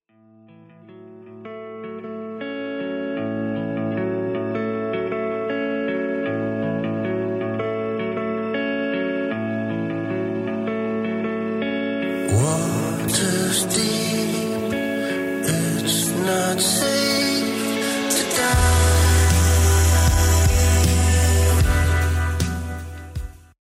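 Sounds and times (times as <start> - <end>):
hazy reverb-soaked dream pop song with rootsy Americana feel by a duo: 0.3 - 23.5.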